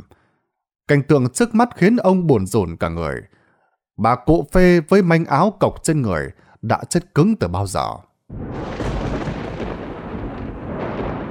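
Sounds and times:
speech: 0.9s - 3.4s, 4.0s - 8.8s
thunderclap across the sky: 8.3s - 11.2s.

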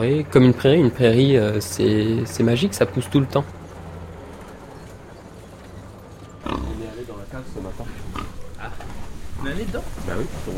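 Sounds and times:
speech: 0.0s - 3.6s
pigs grunting and oinking on a farm with sows: 6.4s - 7.1s, 8.0s - 8.6s.

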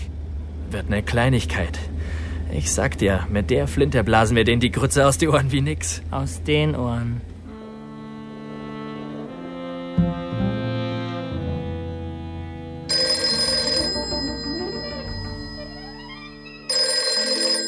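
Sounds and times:
sustained tonal backdrop: 0.0s - 17.6s
speech: 0.7s - 7.3s
telephone ringing: 12.9s - 17.6s.

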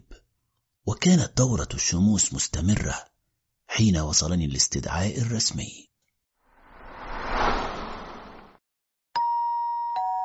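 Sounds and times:
speech: 0.9s - 3.1s, 3.8s - 5.9s
soft rushing noise: 6.5s - 8.6s
two-tone doorbell chime at an apartment door: 9.2s - 10.2s.

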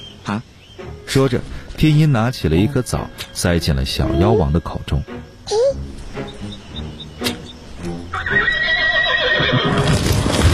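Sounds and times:
speech: 0.3s - 5.6s
horse neighing at a stable: 8.1s - 9.9s.

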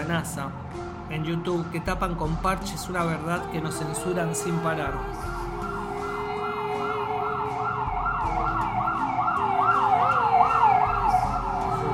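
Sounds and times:
speech: 0.1s - 5.4s
emergency siren wailing: 3.5s - 11.9s.

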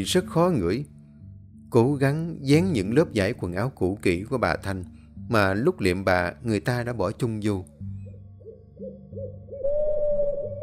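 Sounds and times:
speech: 0.0s - 0.9s, 1.7s - 7.7s
owl hooting: 8.0s - 10.6s.

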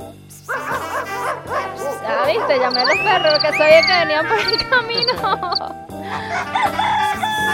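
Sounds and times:
laughter: 0.5s - 7.5s
speech: 2.6s - 7.5s
rooster crowing: 6.1s - 7.5s.

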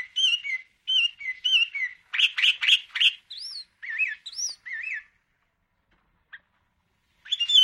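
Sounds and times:
sooty-headed bulbul singing slurred rising and falling whistles and buzzy notes: 0.0s - 5.2s, 7.2s - 7.6s.

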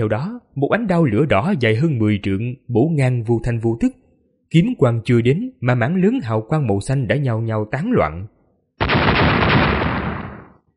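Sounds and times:
speech: 0.0s - 9.0s
explosive blast from a fantasy battle scene: 8.8s - 10.6s.

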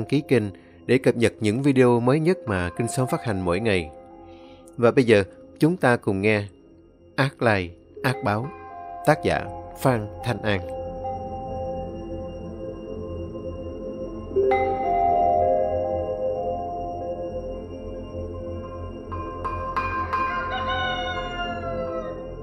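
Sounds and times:
speech: 0.0s - 4.0s, 4.8s - 6.6s, 7.2s - 10.8s
steady low drone: 0.0s - 22.4s
rooster crowing at dawn in a village: 19.8s - 22.4s.

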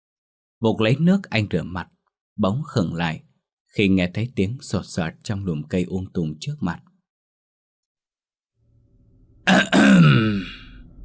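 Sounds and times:
speech: 0.6s - 6.9s, 9.5s - 10.6s
man clearing his throat outdoors at night beside bushes: 9.5s - 10.7s.

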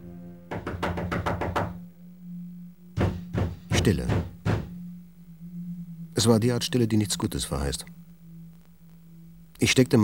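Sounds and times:
low steady drone: 0.0s - 0.6s, 1.8s - 10.0s
knocking on a room door: 0.5s - 1.8s, 3.0s - 4.8s
speech: 3.9s - 4.3s, 6.2s - 8.0s, 9.6s - 10.0s.

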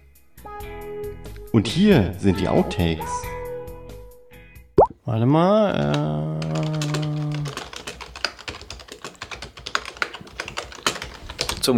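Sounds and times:
speech: 1.5s - 3.4s, 5.1s - 6.5s
loud computer keyboard rapid typing: 5.8s - 11.7s.

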